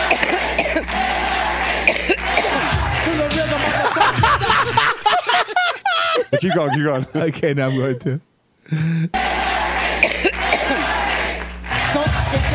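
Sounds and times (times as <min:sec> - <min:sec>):
laughter: 0:00.0 - 0:11.3
woman coughing: 0:00.1 - 0:00.8, 0:10.0 - 0:10.8
speech: 0:06.4 - 0:09.4.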